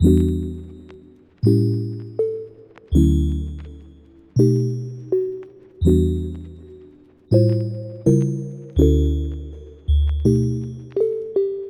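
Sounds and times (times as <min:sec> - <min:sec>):
lofi melody loop: 0:00.0 - 0:11.6.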